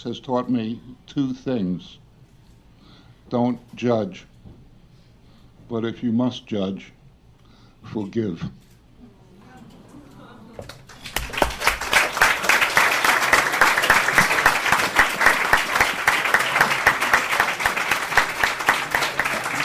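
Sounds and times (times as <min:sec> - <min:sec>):
speech: 0:00.0 - 0:02.0, 0:03.3 - 0:04.3, 0:05.7 - 0:07.0, 0:07.8 - 0:08.6
audience applause after a poem: 0:10.7 - 0:19.6.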